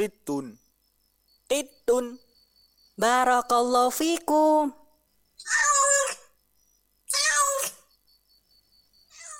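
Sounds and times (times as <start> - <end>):
speech: 0.0 - 0.6, 1.5 - 2.2, 3.0 - 4.8, 5.4 - 6.0
cat meowing: 7.1 - 7.9, 9.1 - 9.3.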